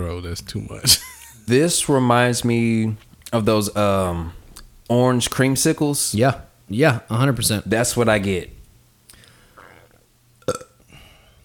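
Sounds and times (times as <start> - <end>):
speech: 0.0 - 8.6
loud burp: 9.5 - 10.9.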